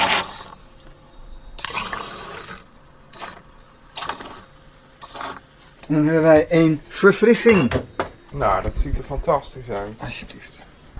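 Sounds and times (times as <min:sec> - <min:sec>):
sparkling water poured into glasses: 0:00.0 - 0:00.7, 0:01.6 - 0:05.7
speech: 0:05.9 - 0:10.6.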